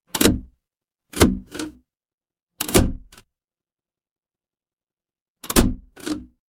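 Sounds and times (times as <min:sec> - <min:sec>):
mechanical lever: 0:00.1 - 0:00.5, 0:02.6 - 0:03.2, 0:05.4 - 0:06.3.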